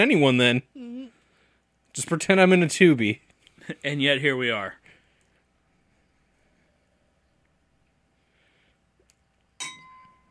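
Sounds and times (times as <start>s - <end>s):
speech: 0.0s - 0.7s, 2.0s - 4.8s
coffee mugs tapped together in a toast: 9.6s - 10.3s.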